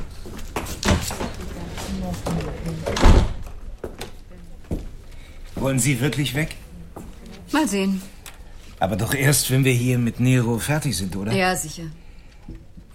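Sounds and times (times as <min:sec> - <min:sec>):
door being opened: 0:00.6 - 0:03.7
speech: 0:05.6 - 0:06.6, 0:07.5 - 0:08.1, 0:08.8 - 0:12.6.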